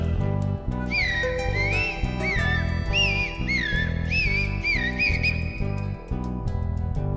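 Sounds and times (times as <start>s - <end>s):
steady rhythmic musical accompaniment: 0.0s - 7.1s
whistled imitation of zorzal thrush song: 0.8s - 6.0s.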